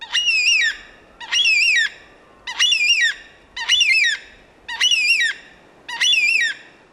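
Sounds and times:
Carnaby's Black Cockatoo drawn-out wailing squawks in Western Australia: 0:00.0 - 0:06.7.

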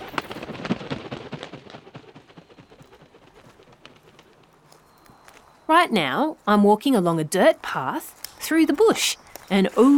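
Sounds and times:
bird wings flapping: 0:00.0 - 0:05.7
speech: 0:05.7 - 0:09.9.

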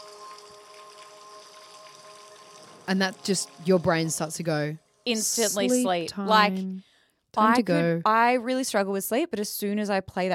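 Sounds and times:
steady soft rainfall: 0:00.0 - 0:04.3
speech: 0:02.9 - 0:10.3.

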